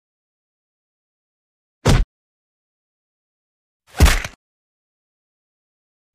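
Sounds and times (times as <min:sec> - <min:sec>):
blows hitting a body: 0:01.9 - 0:02.1, 0:03.9 - 0:04.3.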